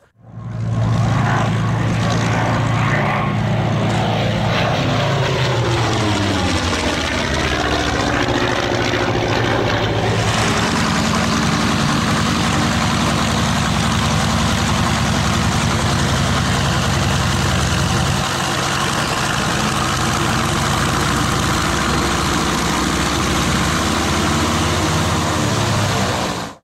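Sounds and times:
Focke-Wulf 190 vintage fighter plane piston engine running: 0.0 - 26.6.

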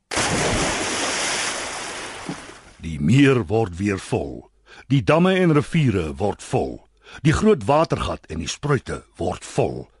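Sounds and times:
water gushing and pouring: 0.0 - 2.8
speech: 2.8 - 9.9.

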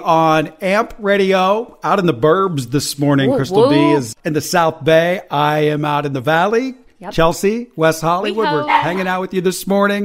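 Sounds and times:
speech: 0.0 - 10.0
dog barking at home: 8.6 - 9.2.

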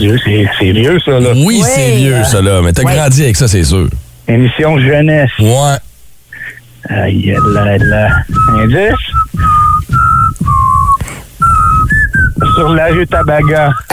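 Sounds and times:
speech: 0.0 - 5.9, 6.8 - 9.5, 12.6 - 13.9
person whistling a children's TV show theme tune: 7.4 - 12.8.

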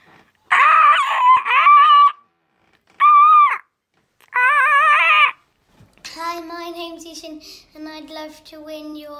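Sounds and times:
six-year-old child squawking in an impression of a parrot: 0.5 - 2.3, 3.0 - 5.4
speech: 7.2 - 9.1.

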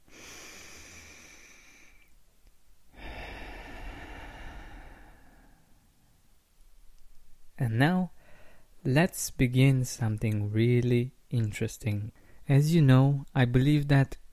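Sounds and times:
person taking a deep breath in and out: 0.0 - 2.2, 2.9 - 6.1, 8.2 - 8.8
speech: 7.6 - 8.1, 8.8 - 14.2.

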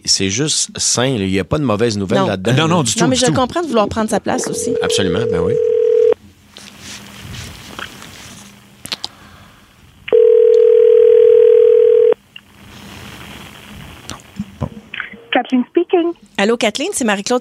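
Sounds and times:
speech: 0.2 - 5.8, 16.4 - 17.3
telephone dial tone heard while placing a call: 4.5 - 6.2, 10.1 - 12.2.

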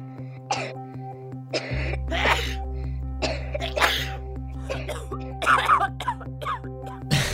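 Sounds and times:
person coughing: 0.5 - 0.8, 1.5 - 2.6, 3.2 - 7.3.

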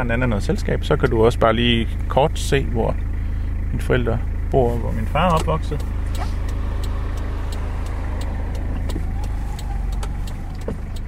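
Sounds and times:
speech: 0.0 - 3.1, 3.7 - 6.4
car engine and road noise inside a car driving slowly on Samsø Denmark: 0.0 - 11.0
faint rattles and light clicks: 5.2 - 11.0.

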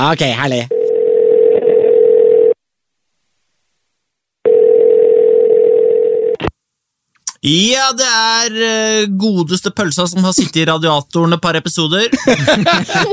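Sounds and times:
speech: 0.0 - 0.8, 7.4 - 13.1
steady single-pitched telephone ringback tone: 0.7 - 2.6, 4.4 - 6.4
laughter: 12.1 - 13.1.

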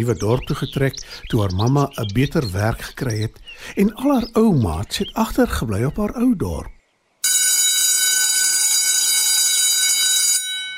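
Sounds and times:
speech: 0.0 - 6.7
loud electric school bell ringing for break: 7.2 - 10.7.

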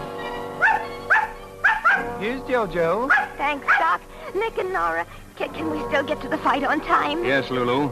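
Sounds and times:
dog barking: 0.6 - 2.2, 3.1 - 4.0
speech: 2.6 - 7.9.

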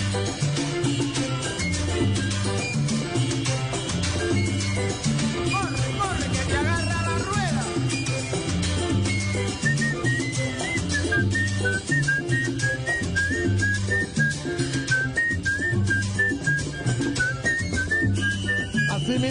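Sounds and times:
bright whistled melody: 0.0 - 19.2
full band recording with bass and percussion: 2.9 - 18.0.

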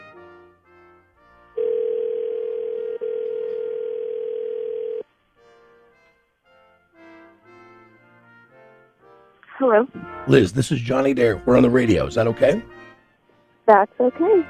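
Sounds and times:
telephone tone as a call is placed to a home number: 1.6 - 5.0
speech: 9.6 - 12.8, 13.7 - 14.4.

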